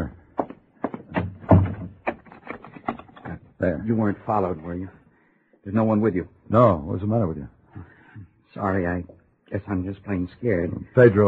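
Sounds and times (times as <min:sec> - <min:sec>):
knocks and shuffles: 0:00.0 - 0:03.6
bolt or lock clacking and rattling: 0:00.4 - 0:03.4
heavy wooden door swinging shut: 0:00.9 - 0:02.2
speech: 0:03.6 - 0:05.0, 0:05.6 - 0:07.9, 0:08.6 - 0:11.2.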